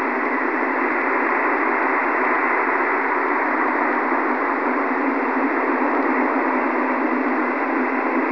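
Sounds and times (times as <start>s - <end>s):
harsh western wind ambience: 0.0s - 8.3s.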